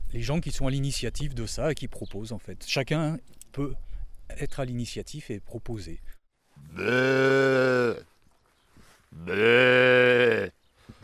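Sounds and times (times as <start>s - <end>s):
speech: 0.1s - 8.1s, 9.1s - 10.6s
person imitating a ewe bleating: 6.6s - 8.0s, 9.2s - 10.6s.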